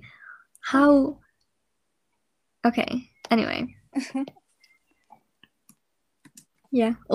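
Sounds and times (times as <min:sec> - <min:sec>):
speech: 0:00.7 - 0:01.2, 0:02.6 - 0:04.4, 0:06.7 - 0:07.1
keyboard tapping: 0:05.4 - 0:06.6.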